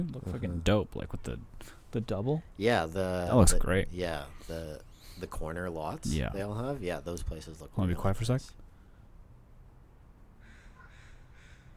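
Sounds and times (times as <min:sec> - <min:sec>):
speech: 0:00.0 - 0:08.6
crow cawing: 0:10.4 - 0:11.7.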